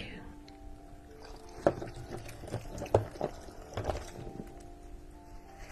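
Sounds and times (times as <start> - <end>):
small water fountain trickling and splashing: 1.2 - 4.1.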